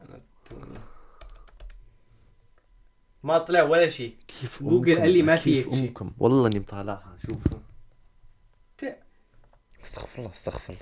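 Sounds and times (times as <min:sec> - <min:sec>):
typing a search on a computer keyboard: 0:00.1 - 0:01.8
speech: 0:03.2 - 0:07.7, 0:08.8 - 0:09.0, 0:09.8 - 0:10.8.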